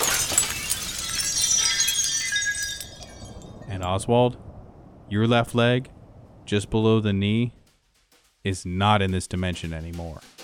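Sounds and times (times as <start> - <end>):
mirrors shattering: 0.0 - 3.9
speech: 3.8 - 4.5, 5.1 - 7.6, 8.4 - 10.3.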